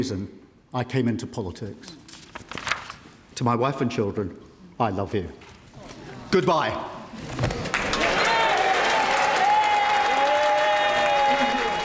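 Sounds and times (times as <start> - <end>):
speech: 0.0 - 2.0, 3.4 - 5.4, 6.3 - 7.5
large crowd giving standing applause in a parliament chamber: 7.6 - 11.8.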